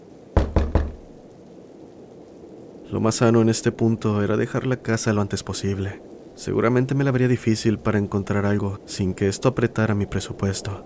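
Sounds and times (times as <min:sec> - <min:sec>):
firm knocking on a door: 0:00.4 - 0:01.1
speech: 0:02.9 - 0:10.8.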